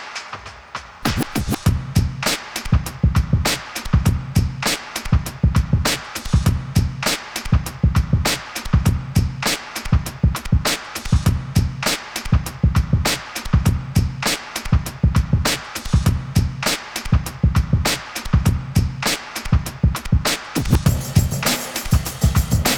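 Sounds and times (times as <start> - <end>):
light staccato cello beats: 1.1 - 22.7.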